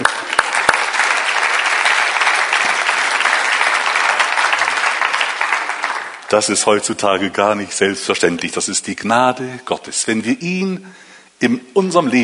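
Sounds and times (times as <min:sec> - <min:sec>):
audience clapping: 0:00.0 - 0:06.6
speech: 0:06.3 - 0:12.2.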